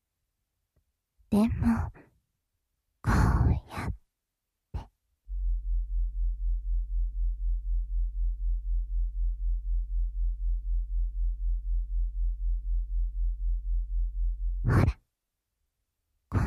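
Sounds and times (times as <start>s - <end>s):
speech: 1.3s - 2.0s
low-frequency sound made audible as a deep pulsing hum: 5.2s - 15.0s.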